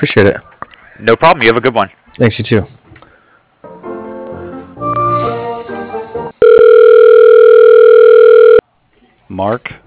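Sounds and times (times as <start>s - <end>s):
speech: 0.0s - 2.8s, 9.4s - 9.8s
loud steady unbroken telephone line tone: 6.4s - 8.6s.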